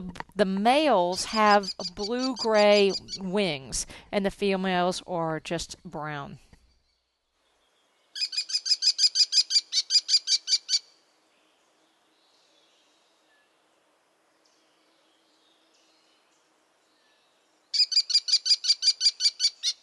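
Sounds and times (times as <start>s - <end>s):
speech: 0.4s - 6.4s
American kestrel calls: 1.1s - 3.2s, 8.2s - 10.9s, 17.8s - 19.8s.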